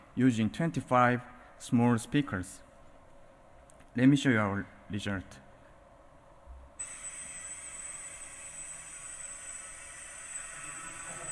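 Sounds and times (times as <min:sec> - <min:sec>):
speech: 0:00.2 - 0:02.6, 0:04.0 - 0:05.4
drone flying past: 0:06.8 - 0:11.3.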